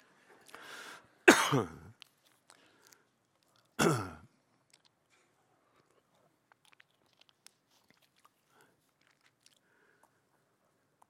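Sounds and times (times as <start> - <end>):
harsh coughs: 1.2 - 1.9, 3.8 - 4.2
throat clearing: 1.3 - 2.0, 3.8 - 4.3.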